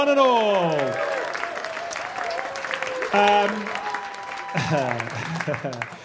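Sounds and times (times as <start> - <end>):
speech: 0.0 - 1.2, 3.1 - 3.8, 4.6 - 6.0
live studio audience cheering and applauding: 0.0 - 6.0
whoops and shouted voices: 0.8 - 5.2
laughter: 4.4 - 6.0.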